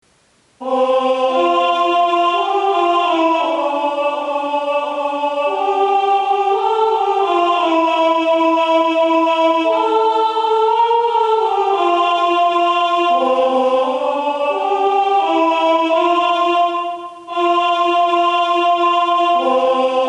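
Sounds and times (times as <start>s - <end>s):
soprano singing Christmas carols: 0.4s - 20.0s.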